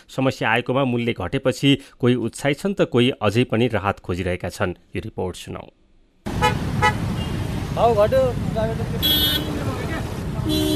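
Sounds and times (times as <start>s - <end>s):
speech: 0.0s - 5.8s, 7.8s - 9.6s
engine rumble of cars and motorcycles queuing at a petrol pump in Lalitpur: 6.2s - 10.7s.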